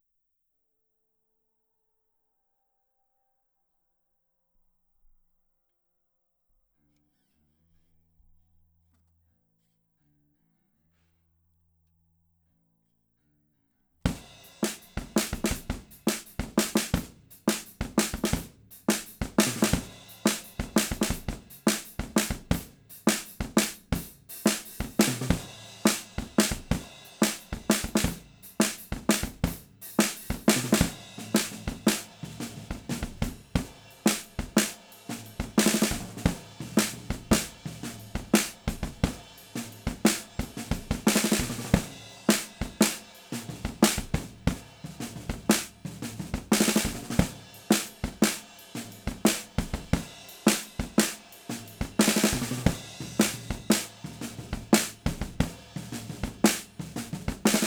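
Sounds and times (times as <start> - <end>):
snare drum recorded with a PGA98: 14.1 - 57.6.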